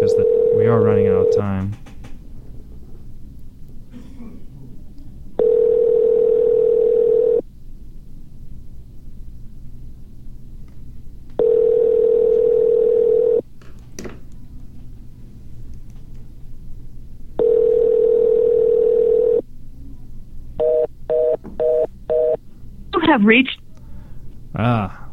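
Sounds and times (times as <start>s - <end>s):
phone dial tone: 0.0s - 1.5s, 5.4s - 7.4s, 11.4s - 13.4s, 17.4s - 19.4s, 20.6s - 22.4s
low hum: 0.0s - 25.1s
speech: 0.7s - 1.9s, 23.2s - 23.6s.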